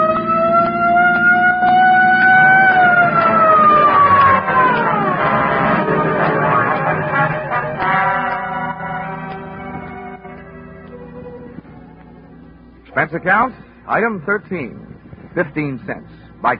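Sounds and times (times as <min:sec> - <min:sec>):
police patrol car siren wailing: 0:00.0 - 0:12.3
rumbling engine: 0:00.0 - 0:16.5
traffic noise: 0:00.0 - 0:16.5
speech: 0:13.2 - 0:16.5.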